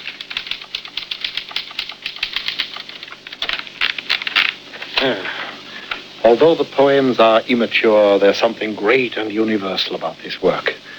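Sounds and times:
typewriter keys clacking: 0.0 - 5.1
speech: 6.2 - 10.8.

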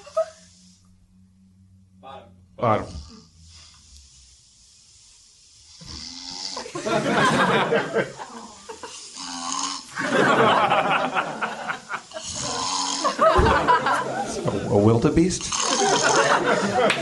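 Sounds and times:
laughter: 0.0 - 0.6, 6.6 - 9.1, 9.9 - 14.8, 15.6 - 16.9
speech: 2.6 - 3.0, 6.9 - 8.2, 13.2 - 16.9
man snoring loudly: 2.6 - 4.3, 5.5 - 10.6, 11.7 - 14.0, 15.4 - 16.8.

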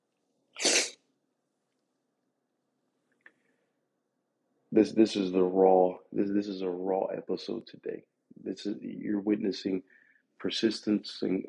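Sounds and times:
faint short sniff: 0.6 - 1.0
loud sneeze: 0.6 - 1.0
speech: 4.7 - 11.4.

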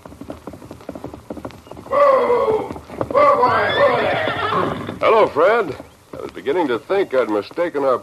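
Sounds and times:
Palomino horse hooves clip-clopping: 0.0 - 8.0
Palomino horse whinnying: 1.7 - 5.8
speech: 5.0 - 8.0.

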